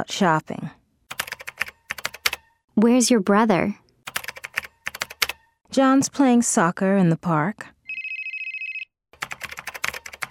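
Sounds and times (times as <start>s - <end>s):
speech: 0.0s - 0.8s, 2.8s - 3.8s, 5.8s - 7.8s
phone ringing with a bright rapidly trilling electronic tone: 7.9s - 8.9s.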